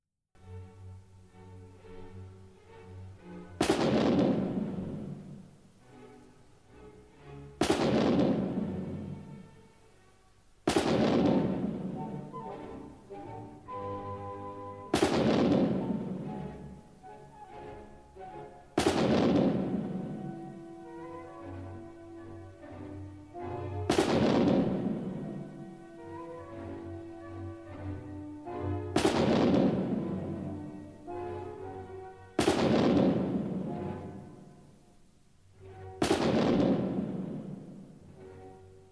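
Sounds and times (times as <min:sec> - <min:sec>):
sustained orchestral battle music with strings and brass: 0:00.4 - 0:38.9
cannon blasts in orchestral battle music: 0:03.6 - 0:05.2, 0:07.6 - 0:09.2, 0:10.7 - 0:12.0, 0:14.9 - 0:16.3, 0:18.8 - 0:20.2, 0:23.9 - 0:25.3, 0:29.0 - 0:30.4, 0:32.4 - 0:33.7, 0:36.0 - 0:37.8.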